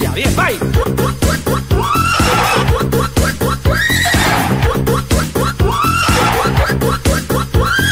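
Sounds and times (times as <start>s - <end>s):
steady driving rhythmic music backing: 0.0s - 7.9s
speech: 0.2s - 1.2s
horse whinnying: 1.8s - 3.0s, 3.6s - 4.8s, 5.6s - 6.8s.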